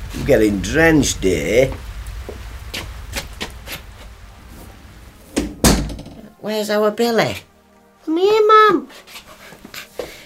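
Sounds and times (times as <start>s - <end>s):
steady low rumble: 0.0s - 6.2s
speech: 0.3s - 1.9s, 6.5s - 9.2s
door thud: 5.4s - 6.3s.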